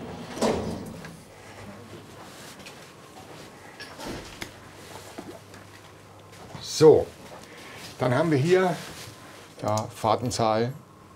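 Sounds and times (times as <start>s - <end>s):
elevator door clunk: 0.0s - 1.2s
speech: 6.8s - 7.2s, 8.0s - 8.9s, 9.6s - 10.8s.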